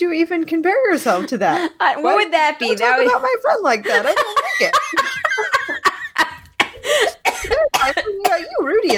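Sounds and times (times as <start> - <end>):
speech: 0.0 - 5.8, 6.9 - 8.9
person laughing hard: 3.9 - 7.7
person coughing and choking while laughing: 4.4 - 8.9.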